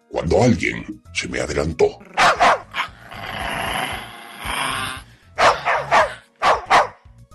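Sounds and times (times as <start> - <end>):
speech: 0.2 - 2.4
dog barking aggressively: 2.1 - 2.9, 5.4 - 7.0.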